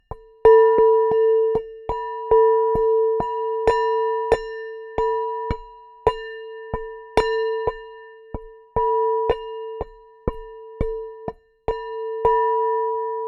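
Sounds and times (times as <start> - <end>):
glockenspiel beater hits on a large wine glass: 0.5 - 13.2.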